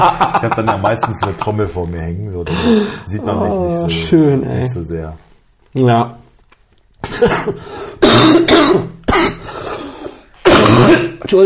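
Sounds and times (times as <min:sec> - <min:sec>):
speech: 0:00.0 - 0:06.2, 0:07.2 - 0:09.4, 0:10.9 - 0:11.4
loud harsh throaty coughing: 0:07.0 - 0:11.3.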